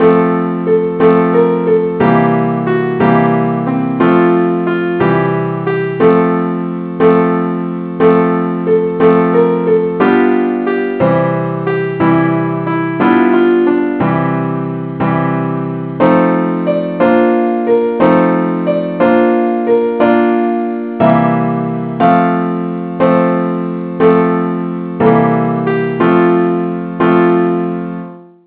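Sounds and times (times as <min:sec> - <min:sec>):
simple musical accompaniment: 0:00.0 - 0:28.4.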